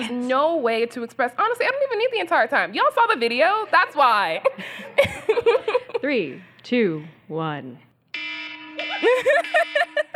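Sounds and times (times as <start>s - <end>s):
speech: 0.0s - 7.9s, 9.0s - 9.9s
laughter: 3.6s - 6.0s, 8.8s - 10.1s
phone alarm ringtone with electronic melody: 8.1s - 10.1s.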